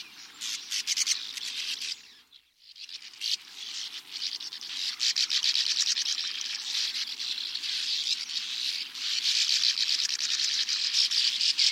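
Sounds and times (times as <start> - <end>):
sand martins giving dense dry rasping chatter: 0.0 - 11.7.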